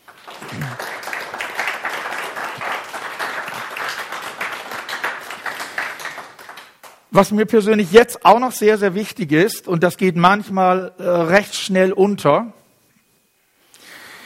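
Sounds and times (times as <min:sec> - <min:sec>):
large audience applauding: 0:00.0 - 0:07.0
speech: 0:07.1 - 0:12.6.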